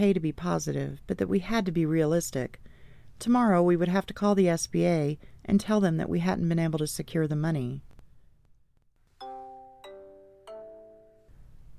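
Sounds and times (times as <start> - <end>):
speech: 0.0 - 7.9
phone call-waiting alert chime: 9.2 - 11.3.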